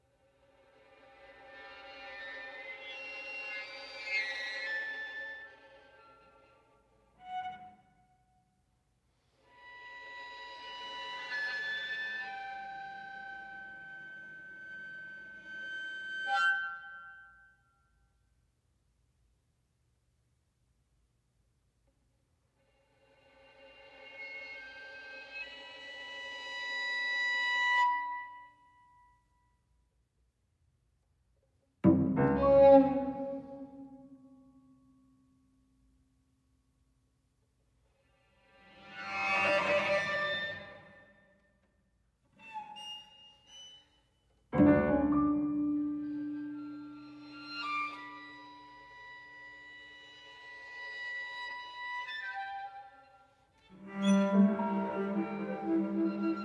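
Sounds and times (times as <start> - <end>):
cello: 0.0 - 8.6, 9.2 - 17.4, 22.6 - 28.6, 31.8 - 34.3, 37.9 - 41.3, 42.3 - 56.4
violin: 0.0 - 8.6, 9.2 - 17.4, 22.6 - 28.6, 31.8 - 34.3, 37.9 - 41.6, 42.2 - 56.4
piano: 31.8 - 34.6, 44.5 - 49.8.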